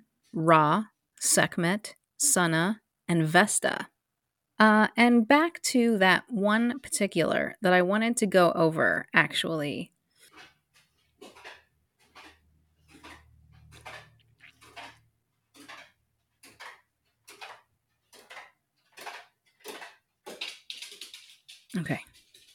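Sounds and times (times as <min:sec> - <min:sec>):
speech: 0:00.3 - 0:03.9, 0:04.6 - 0:10.5, 0:21.8 - 0:22.1
old dog paws and claws clicking on hard steps: 0:10.2 - 0:22.5.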